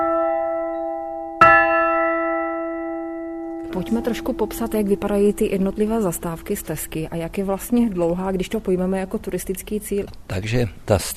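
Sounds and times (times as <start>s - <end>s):
large bell ringing with a deep resonant tone: 0.0s - 8.1s
speech: 3.7s - 11.1s.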